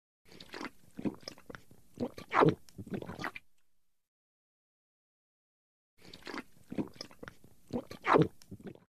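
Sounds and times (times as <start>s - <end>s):
human gulping beer: 0.3s - 3.4s, 6.0s - 8.9s.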